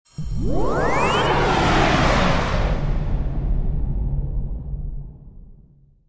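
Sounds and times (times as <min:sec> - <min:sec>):
electric fly-by whoosh: 0:00.1 - 0:04.2
musical stingers: 0:00.2 - 0:02.7.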